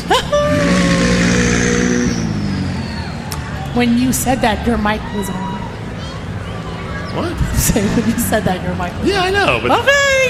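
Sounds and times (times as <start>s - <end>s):
car engine revving in a rolling parade at a car show: 0.4s - 5.0s, 7.2s - 9.4s
speech: 3.8s - 5.5s, 7.2s - 10.2s.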